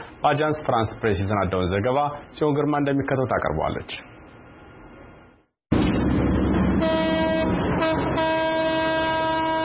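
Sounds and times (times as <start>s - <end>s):
speech: 0.2s - 4.1s
old train on a century-old French-built railway rumbling as it pulls out of Dire Dawa station: 5.7s - 9.6s
train horn blasting at Dire Dawa station: 6.8s - 9.6s.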